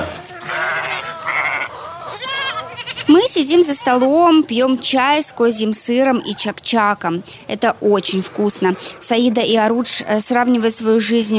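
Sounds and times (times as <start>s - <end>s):
flock of sheep bleating on a farm: 0.0s - 4.4s
speech: 3.4s - 11.3s.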